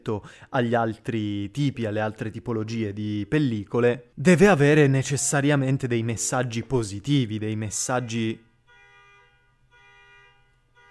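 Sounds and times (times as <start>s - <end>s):
speech: 0.0s - 8.5s
car alarm sounding outside: 7.9s - 10.9s.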